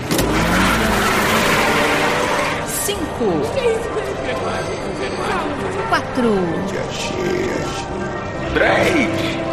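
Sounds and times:
race car engine revving at high RPM: 0.1 - 3.0
speech: 3.2 - 9.4.

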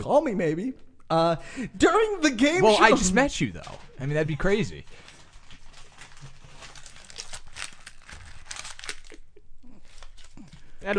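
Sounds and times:
speech: 0.0 - 5.1
paper being crumpled: 4.7 - 10.6.

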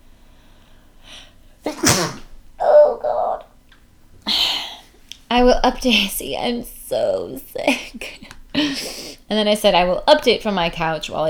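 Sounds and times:
person sneezing: 1.7 - 3.4
speech: 5.6 - 11.2.

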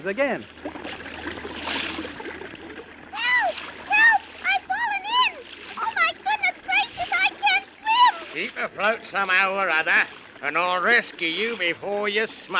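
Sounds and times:
speech: 0.0 - 1.1, 8.4 - 12.5
water splash of a walrus and a man falling through ice into a river: 0.0 - 12.5
high squeaky warbling cries: 3.1 - 8.5.

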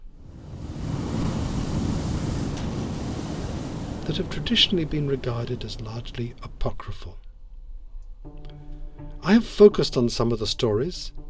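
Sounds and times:
giant ocean waves roaring: 0.0 - 7.1
speech: 4.1 - 7.2, 9.2 - 11.2.

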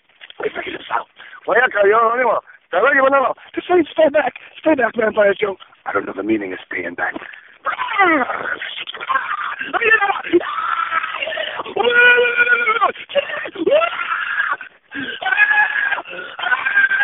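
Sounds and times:
speech: 0.4 - 10.0
person screaming and wailing in the middle of a road: 7.6 - 17.0.

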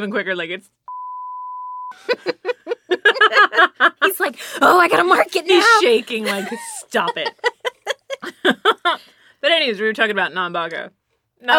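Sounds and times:
speech: 0.0 - 0.9, 1.9 - 2.5, 3.3 - 7.6, 8.2 - 11.5
censor bleep tone: 0.9 - 2.0
laughter: 1.9 - 9.1.

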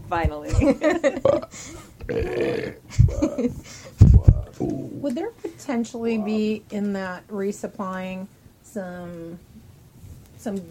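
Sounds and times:
speech: 0.1 - 9.5, 10.4 - 10.7
person burping mimicking a blue Ceresian burping lemur: 1.2 - 3.6, 4.2 - 5.2
short guttural vocal bursts: 2.0 - 5.2.

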